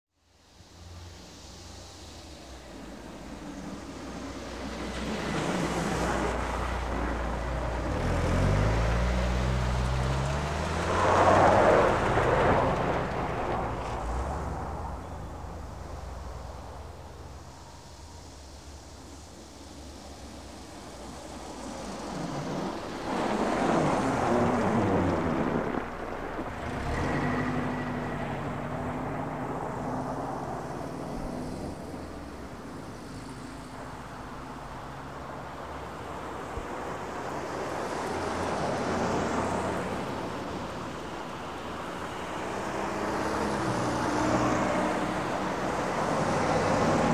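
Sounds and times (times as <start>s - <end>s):
traffic in the snow: 0.1s - 47.1s.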